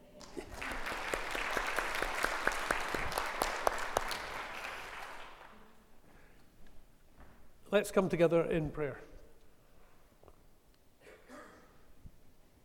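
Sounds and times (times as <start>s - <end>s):
audience applauding in a reverberant room: 0.0s - 5.8s
speech: 7.8s - 9.1s.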